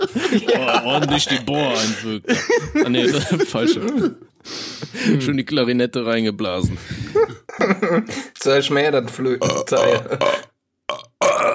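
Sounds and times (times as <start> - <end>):
laughter: 0.0 - 4.2, 6.7 - 8.3
speech: 0.0 - 11.3
loud throaty burps: 9.4 - 11.5.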